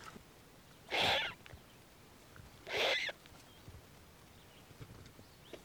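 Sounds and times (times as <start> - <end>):
turkey vulture chicks giving harsh breathy hissing calls: 0.8 - 1.4, 2.6 - 3.2.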